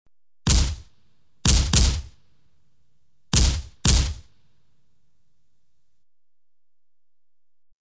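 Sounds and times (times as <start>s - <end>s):
shot from a short gun: 0.5s - 2.2s, 3.3s - 4.3s.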